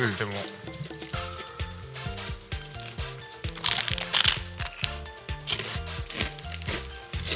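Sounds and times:
speech: 0:00.0 - 0:00.9
soft steady music: 0:00.0 - 0:07.3
crunchy snack being chewed: 0:02.8 - 0:07.3.

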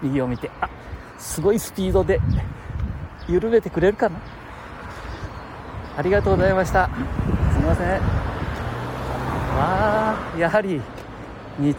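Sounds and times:
speech: 0:00.0 - 0:02.6, 0:03.3 - 0:04.4, 0:06.0 - 0:08.3, 0:09.6 - 0:11.0, 0:11.6 - 0:11.7
cars driving past on a road: 0:04.3 - 0:11.7.

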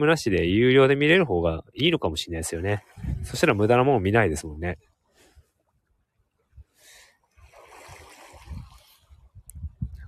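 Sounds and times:
speech: 0:00.0 - 0:04.9
feet splashing in shallow lukewarm seawater in Okinawa: 0:07.4 - 0:09.2.

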